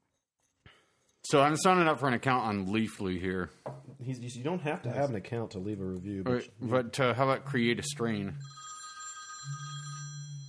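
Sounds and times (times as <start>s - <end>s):
speech: 1.3s - 8.6s
telephone ringing with an electronic tone: 7.8s - 10.4s.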